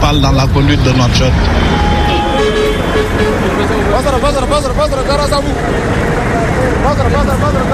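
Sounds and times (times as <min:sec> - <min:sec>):
constant roar of traffic and engines: 0:00.0 - 0:07.7
speech: 0:00.1 - 0:01.9, 0:03.0 - 0:07.7
murmur of voices: 0:01.0 - 0:07.7
car horns honking in a busy street: 0:01.5 - 0:06.0.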